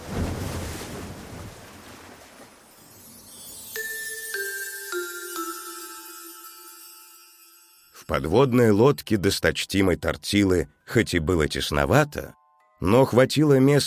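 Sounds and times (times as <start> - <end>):
water churning as a corked bottle is dragged down: 0.0 - 2.8
ringing chime-like tones: 2.7 - 9.1
speech: 8.1 - 13.8.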